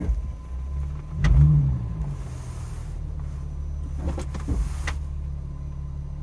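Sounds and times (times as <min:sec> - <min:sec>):
rear seat creak popping noise in 2007 Infiniti G35 sedan: 0:01.1 - 0:05.1.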